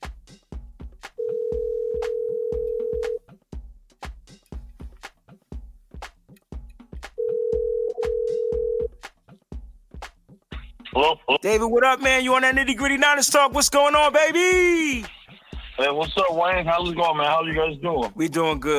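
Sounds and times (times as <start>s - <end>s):
steady rhythmic percussive beat: 0.0s - 18.7s
ringback tone of an outgoing telephone call: 1.2s - 3.2s, 7.2s - 8.9s
speech: 11.0s - 15.2s, 15.8s - 18.7s.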